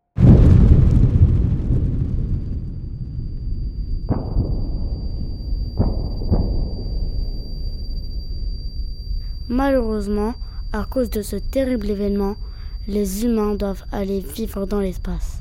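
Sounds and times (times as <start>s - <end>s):
low rumble: 0.0s - 15.3s
cracking blasts: 0.2s - 10.0s
huge explosion booming: 0.2s - 14.2s
thin high whine: 3.3s - 15.3s
speech: 9.6s - 15.3s.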